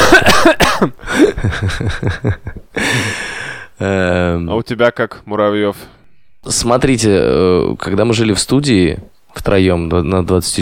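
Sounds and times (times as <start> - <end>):
person coughing harshly: 0.0 - 1.4
speech: 0.4 - 0.7, 1.4 - 2.6, 3.8 - 10.6
laughter: 1.1 - 2.8.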